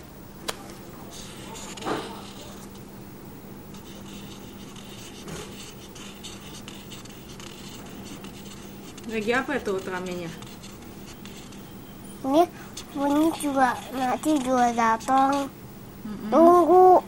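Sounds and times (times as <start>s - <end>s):
pen drawing on paper: 1.1s - 2.7s, 3.7s - 15.5s
speech: 9.1s - 10.5s, 12.2s - 16.9s.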